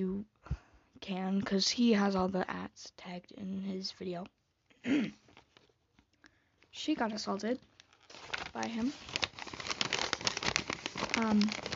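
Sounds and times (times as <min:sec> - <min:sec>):
speech: 0:01.0 - 0:05.2, 0:06.8 - 0:09.3, 0:11.2 - 0:11.7
paper notes being crumpled: 0:07.6 - 0:11.7.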